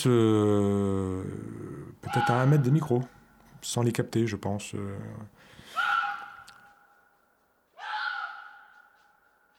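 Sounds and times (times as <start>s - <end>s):
speech: 0.0s - 1.4s, 2.1s - 5.6s
fox giving harsh screaming calls at night in a forest: 2.0s - 2.7s, 5.7s - 6.7s, 7.8s - 9.0s.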